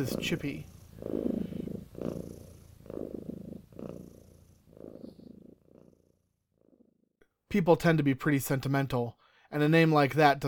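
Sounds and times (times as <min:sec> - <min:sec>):
speech: 0:00.0 - 0:01.4, 0:07.6 - 0:10.4
cat purring while being scratched: 0:00.0 - 0:07.2.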